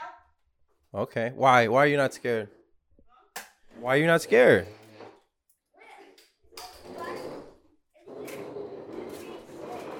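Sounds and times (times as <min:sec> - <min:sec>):
speech: 0:00.9 - 0:02.6, 0:03.8 - 0:04.8
chair scraping across floor: 0:03.7 - 0:05.3, 0:06.6 - 0:09.9.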